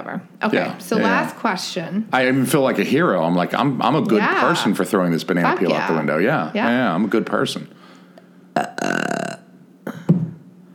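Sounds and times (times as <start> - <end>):
speech: 0.1 - 7.8
loud drawn-out burp: 8.6 - 10.1
shorter deeper belch: 8.6 - 10.2.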